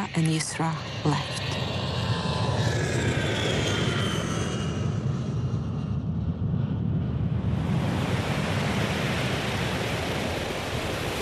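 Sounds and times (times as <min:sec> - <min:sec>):
airplane jet engine roar on a runway: 0:00.0 - 0:11.1
speech: 0:00.2 - 0:01.6.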